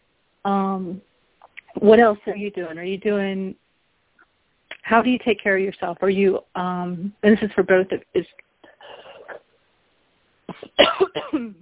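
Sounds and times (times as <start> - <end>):
speech: 0.4 - 1.1, 1.8 - 3.6, 4.8 - 8.4, 10.8 - 11.5
person coughing from a cold: 8.8 - 9.4, 10.5 - 11.5.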